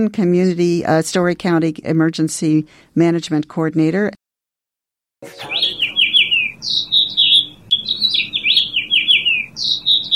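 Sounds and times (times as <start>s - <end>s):
speech: 0.0s - 4.2s, 5.2s - 5.5s
songbird nesting above a building entrance in Iowa singing: 5.3s - 10.1s.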